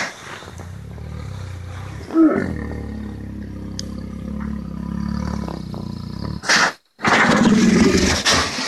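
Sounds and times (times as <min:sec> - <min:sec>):
grizzly bear growling: 0:00.2 - 0:08.5.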